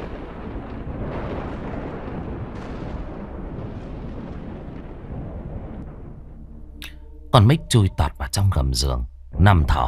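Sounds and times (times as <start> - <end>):
thunder from a lightning bolt striking a courtyard: 0.0 - 7.8
speech: 7.3 - 9.8.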